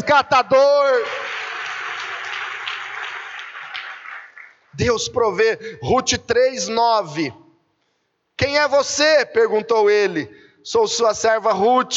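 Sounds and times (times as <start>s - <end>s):
speech: 0.0s - 1.4s, 4.8s - 7.4s, 8.4s - 11.9s
congregation applauding: 0.4s - 4.9s.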